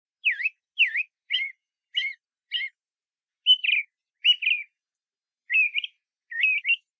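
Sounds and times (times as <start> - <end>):
Eyebrowed thrush giving short sharp chirping notes: 0.2 - 2.8, 3.4 - 4.8, 5.5 - 6.9.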